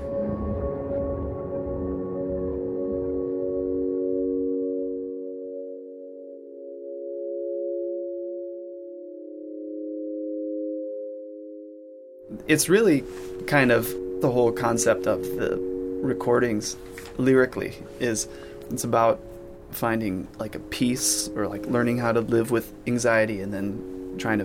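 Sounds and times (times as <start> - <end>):
dense rumbling busy texture: 0.0 - 3.8
serene sustained electronic tones: 0.0 - 24.4
speech: 12.5 - 24.4.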